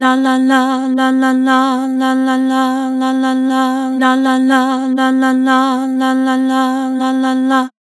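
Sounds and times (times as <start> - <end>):
synthesized vocal singing lah with vibrato: 0.0 - 7.9.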